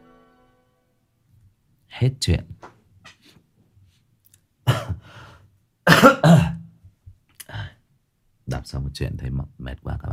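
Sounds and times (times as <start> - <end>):
speech: 2.0 - 2.6, 8.8 - 10.1
person clearing throat: 4.7 - 5.0, 5.9 - 6.7
person coughing: 4.7 - 5.1, 5.9 - 6.7.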